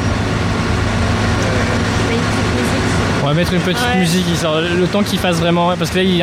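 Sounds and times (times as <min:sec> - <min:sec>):
truck engine rumbling: 0:00.0 - 0:06.2
speech: 0:03.3 - 0:06.2.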